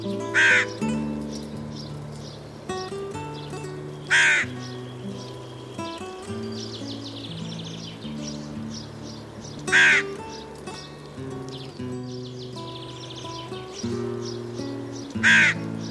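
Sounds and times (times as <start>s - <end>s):
faint higher calls: 0.0s - 15.8s
hooded crow cawing: 0.2s - 0.9s, 4.0s - 4.8s, 9.6s - 10.9s, 15.1s - 15.8s.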